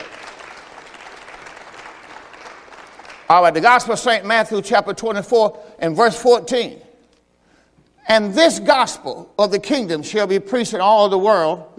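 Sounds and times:
audience clapping: 0.0 - 4.0
speech: 3.3 - 6.9, 8.1 - 11.7.

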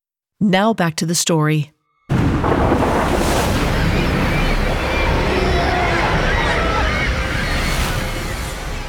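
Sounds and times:
speech: 0.4 - 1.8
stormy surf pounding a shoreline: 2.1 - 8.8.

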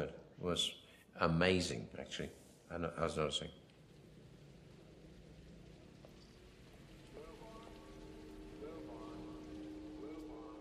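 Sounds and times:
speech: 0.4 - 3.6
heavy rain pouring down: 3.0 - 10.5.

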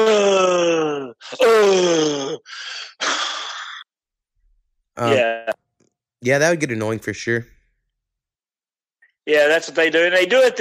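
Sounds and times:
person groaning sighs: 0.0 - 3.8
person imitating exasperated heavy breathing: 0.1 - 3.9
speech: 6.2 - 7.6, 9.3 - 10.5.

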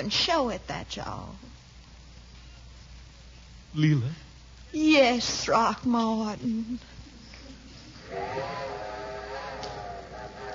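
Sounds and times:
speech: 0.0 - 1.6, 3.7 - 6.9, 8.1 - 8.7
steam train whistle from the railway at Moore's Junction: 8.0 - 10.5.

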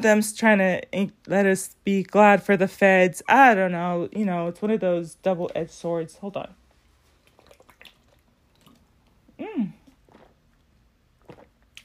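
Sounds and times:
speech: 0.0 - 6.6
person sipping cold water: 7.1 - 11.8
person humming with satisfaction: 9.4 - 9.9.

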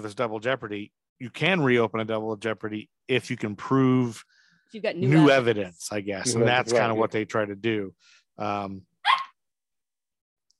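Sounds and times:
speech: 0.0 - 9.2
dog barking: 9.1 - 9.4.

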